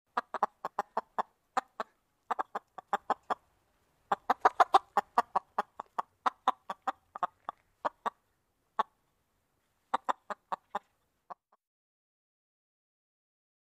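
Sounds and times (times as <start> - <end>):
chickens clucking: 0.1 - 9.0, 9.8 - 11.6.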